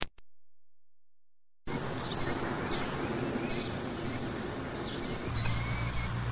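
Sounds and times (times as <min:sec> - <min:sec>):
killdeer calling: 0:01.7 - 0:06.3.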